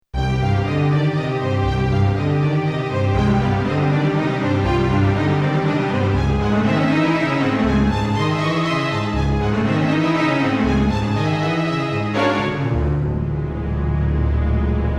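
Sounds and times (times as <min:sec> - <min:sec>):
arco strings on Roland XP-80: 0:00.2 - 0:14.9.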